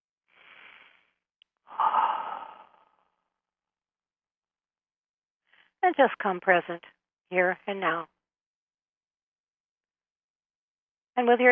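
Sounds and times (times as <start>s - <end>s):
deep human breath in and out: 0.3s - 3.4s
speech: 5.8s - 8.1s, 11.2s - 11.4s.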